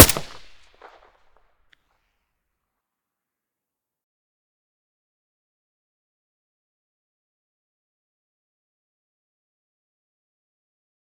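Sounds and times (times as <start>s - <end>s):
AK-74U rifle shots with silencer: 0.0s - 1.0s.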